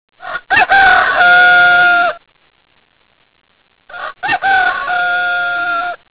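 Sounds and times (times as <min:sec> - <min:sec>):
rooster crowing: 0:00.2 - 0:02.2, 0:03.9 - 0:06.1.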